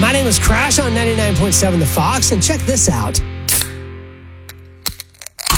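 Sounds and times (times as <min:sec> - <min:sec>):
speech: 0:00.1 - 0:03.3
can of cold drink cracked open: 0:03.5 - 0:03.8, 0:04.5 - 0:05.5.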